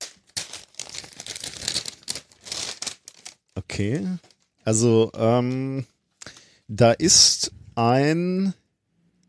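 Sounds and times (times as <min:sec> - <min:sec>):
packaging crinkling and tearing as a parcel holding a conference name badge is unwrapped: 0:00.0 - 0:04.6
speech: 0:03.7 - 0:05.9, 0:06.7 - 0:08.6.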